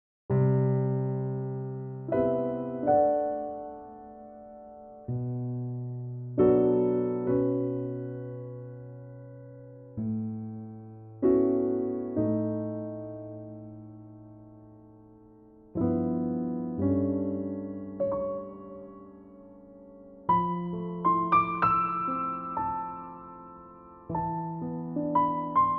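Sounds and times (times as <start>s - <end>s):
piano arrangement in C: 0.3s - 25.7s.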